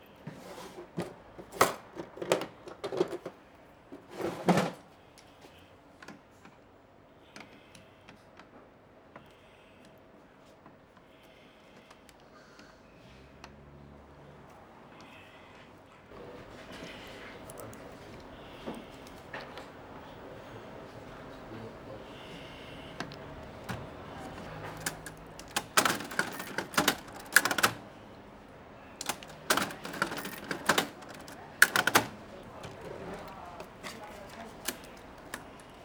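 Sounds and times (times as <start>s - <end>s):
manual cash register in a bar: 0.3s - 3.4s, 4.0s - 4.8s, 16.2s - 35.8s.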